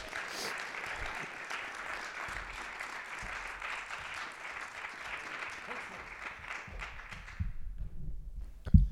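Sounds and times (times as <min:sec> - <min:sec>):
audience clapping: 0:00.0 - 0:07.6
low thumps: 0:06.7 - 0:08.9.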